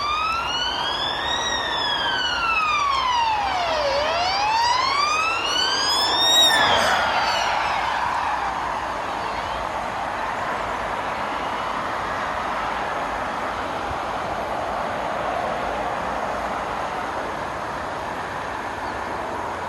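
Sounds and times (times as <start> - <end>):
roar of train wheels on rails: 0.0 - 19.6
train rumbling past a station platform: 0.7 - 19.6.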